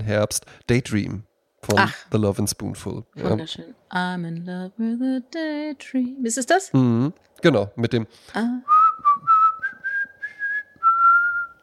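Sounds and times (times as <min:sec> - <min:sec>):
speech: 0:00.0 - 0:08.8
person whistling a melodic tune: 0:08.7 - 0:11.6.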